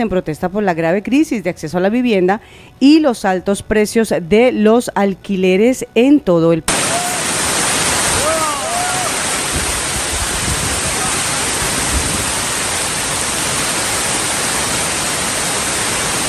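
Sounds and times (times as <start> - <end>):
speech: 0.0 - 6.9
torrential rain downpour over a protest camp: 6.7 - 16.2.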